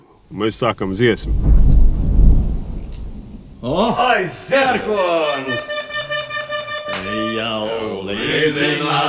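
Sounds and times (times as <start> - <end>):
speech: 0.3 - 1.6, 3.6 - 5.7, 7.4 - 9.0
thunder rumbling on the bank of the Gauja river: 0.8 - 4.9.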